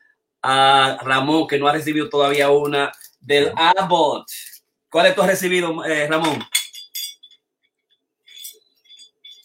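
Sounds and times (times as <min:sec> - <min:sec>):
speech: 0:00.4 - 0:06.6
metal Boston Marathon medals clinking together: 0:06.2 - 0:07.4, 0:08.3 - 0:09.4.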